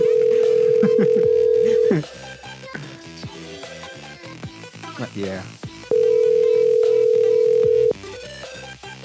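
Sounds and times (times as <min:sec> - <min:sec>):
steady loud telephone dial tone while redialing: 0:00.0 - 0:02.0, 0:05.9 - 0:08.0
speech: 0:00.8 - 0:02.3, 0:05.2 - 0:05.6.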